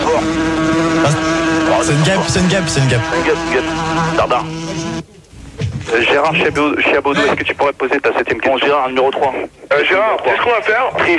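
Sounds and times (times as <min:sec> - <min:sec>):
fly buzzing: 0:00.0 - 0:05.1
speech: 0:01.8 - 0:05.1, 0:05.9 - 0:11.1.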